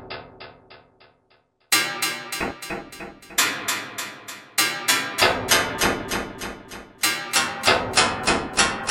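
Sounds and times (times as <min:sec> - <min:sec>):
metal brush chromatic hits: 0:01.7 - 0:08.8.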